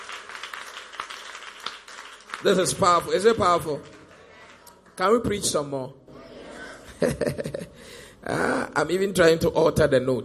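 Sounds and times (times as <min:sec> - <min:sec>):
audience clapping hands: 0:00.0 - 0:05.2
speech: 0:02.4 - 0:04.0, 0:05.0 - 0:06.0, 0:07.0 - 0:10.2
laughter: 0:06.2 - 0:07.8.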